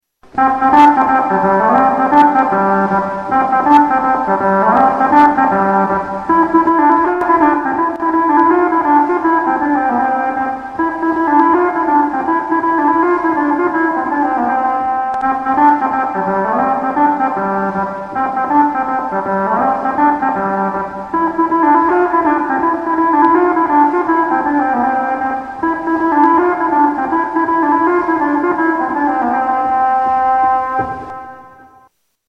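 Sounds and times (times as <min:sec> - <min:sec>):
crumhorn: 0:00.2 - 0:32.0.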